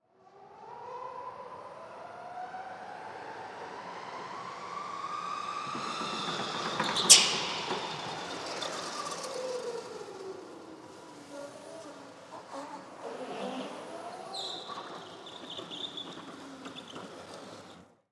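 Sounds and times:
electric go-kart driving up: 0.3 - 18.0
electric go-kart braking slowly: 4.7 - 18.0.

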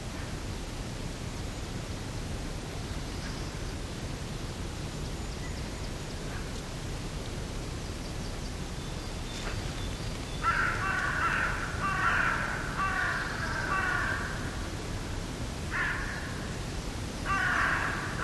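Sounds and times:
soft background hiss: 0.0 - 18.2
hooded crow giving harsh grating caws in mixed woodland in early spring: 10.4 - 14.6, 15.7 - 16.5, 17.2 - 18.2.

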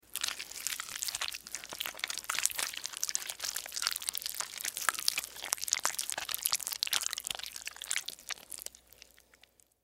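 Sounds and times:
juicy slimy squishes of guts and insect body: 0.0 - 9.8.

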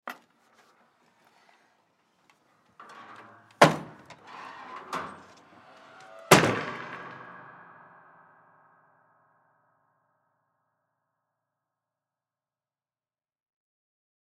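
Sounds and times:
pull-down attic door closing: 2.7 - 7.9.

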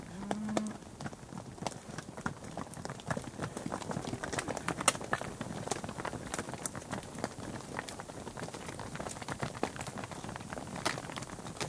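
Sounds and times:
cattle hooves clattering on tarmac road: 0.0 - 11.6.

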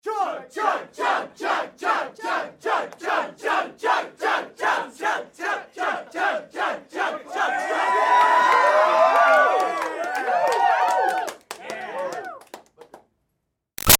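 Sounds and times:
crowd of teens chanting chug: 0.1 - 9.0
crowd of teens cheering: 7.0 - 12.6
crowd of teens clapping: 8.0 - 13.1.

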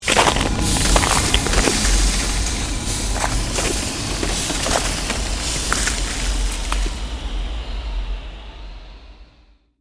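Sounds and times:
created fantasy ice magic blizzard shards spell sounds: 0.0 - 7.1.

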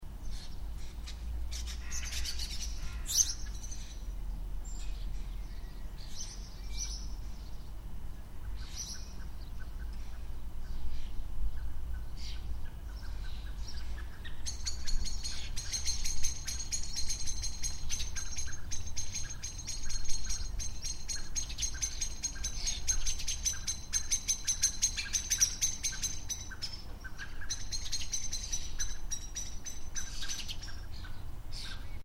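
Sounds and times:
slight road traffic in background: 0.0 - 14.7, 20.4 - 32.0
birds in a residential garden: 0.0 - 32.0.

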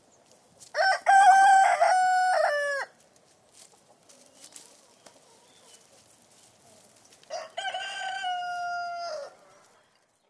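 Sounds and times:
chicken crowing in a yard: 0.8 - 2.9, 7.3 - 9.4.

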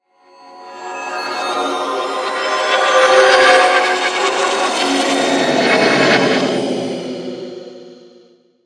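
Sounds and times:
science fiction sweeper swell: 1.3 - 8.0.

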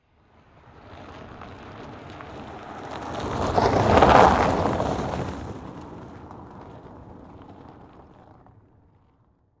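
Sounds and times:
Saturn Vue car tires passing by on snow: 0.0 - 9.5.

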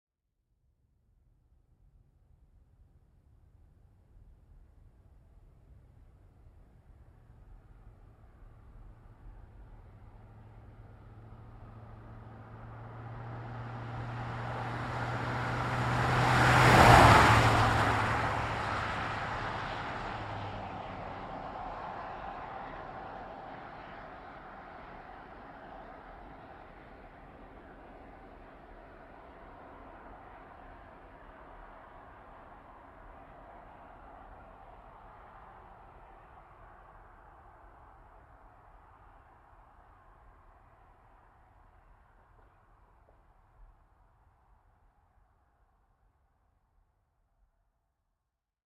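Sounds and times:
GMC Savana truck driving fast: 10.1 - 32.6.

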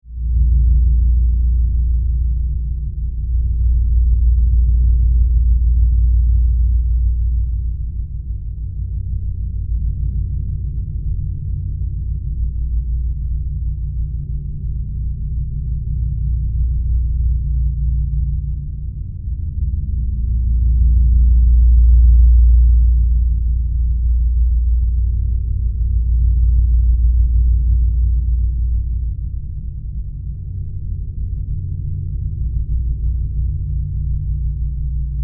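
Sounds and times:
spaceship interior rumble: 0.0 - 35.2.

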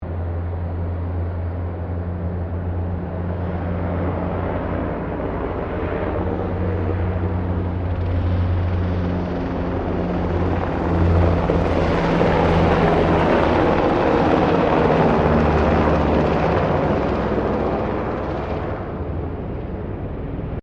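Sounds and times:
Eurocopter AS350 Squirrel helicopter passing: 0.0 - 20.6.

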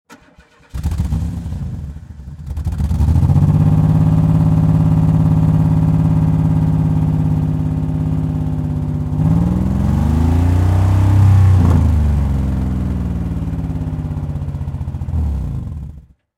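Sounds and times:
car engine with disconnected spark plug starting, revving, running steady and shutting off: 0.1 - 16.2.

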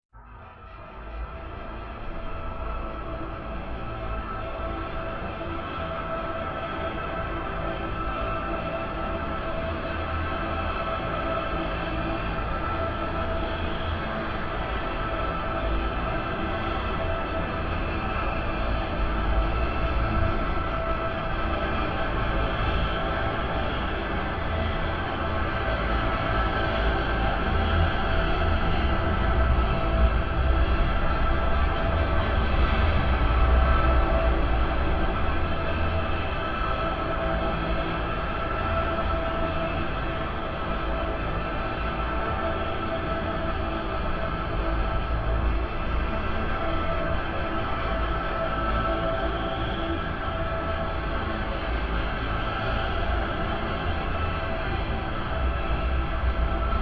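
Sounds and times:
shimmering tonal musical drone texture: 0.3 - 56.7.

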